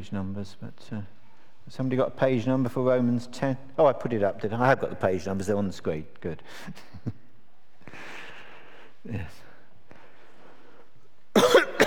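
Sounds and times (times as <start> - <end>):
speech: 0.0 - 7.2, 9.0 - 9.5
harsh raspy coughs: 11.3 - 11.8.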